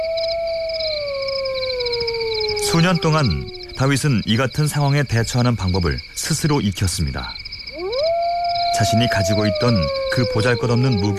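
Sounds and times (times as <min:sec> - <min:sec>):
wolf howling: 0:00.0 - 0:04.3, 0:07.7 - 0:11.1
faint hiss: 0:00.0 - 0:11.1
speech: 0:02.7 - 0:07.4, 0:08.8 - 0:11.1.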